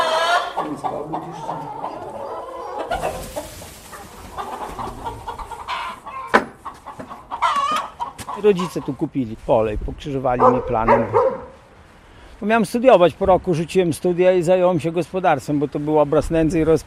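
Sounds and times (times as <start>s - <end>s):
hens clucking in a henhouse: 0.0s - 9.3s
speech: 0.9s - 1.9s, 8.4s - 11.4s, 12.4s - 16.8s.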